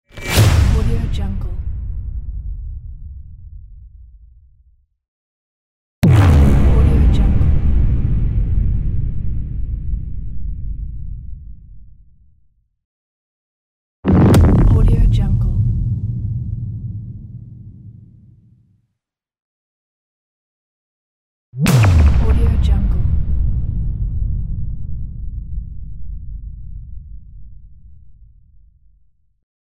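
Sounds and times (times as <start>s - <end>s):
epic trailer hits: 0.1s - 2.8s, 6.0s - 9.8s, 14.1s - 18.2s, 21.6s - 25.3s.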